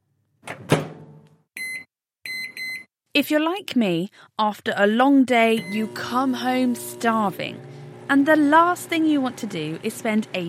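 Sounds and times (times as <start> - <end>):
microwave oven door shutting with a clunk and rattle: 0.5 - 1.2
speech: 3.2 - 10.4.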